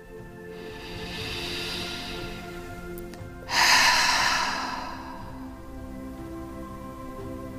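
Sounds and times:
deep breath in through the nose and out through the mouth during a guided relaxation exercise: 0.4s - 6.4s.

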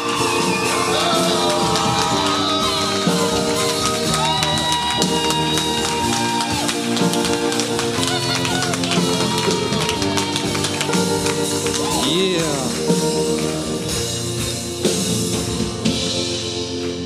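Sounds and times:
shouts and whoops: 0.0s - 11.0s
crowd cheering and applauding: 0.0s - 17.0s
music playing: 0.0s - 17.0s.

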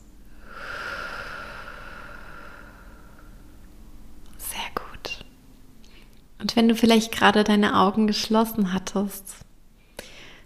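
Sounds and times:
low steady hum: 0.0s - 10.4s
slow breathy exhalation: 0.3s - 3.5s
speech: 6.5s - 9.4s.

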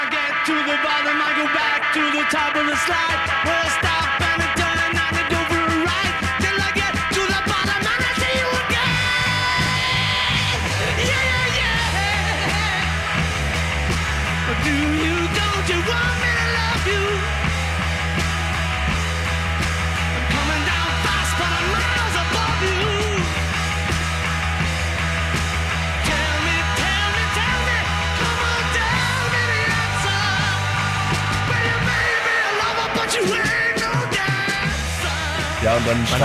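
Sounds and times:
heavy distorted electric guitars in a raw rock song: 0.0s - 36.2s
hoarse shouted lead vocal: 0.0s - 36.2s
speech: 0.5s - 4.2s, 35.6s - 36.2s
pounding drums: 2.9s - 36.2s.

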